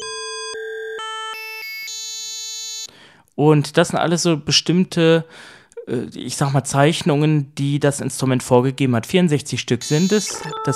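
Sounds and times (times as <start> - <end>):
speech: 3.4 - 10.7
bell-like synthesizer tones: 9.8 - 10.7.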